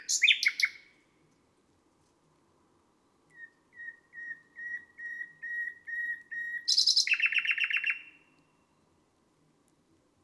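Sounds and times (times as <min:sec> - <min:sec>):
nightingale song: 0:00.0 - 0:01.0, 0:02.9 - 0:09.0.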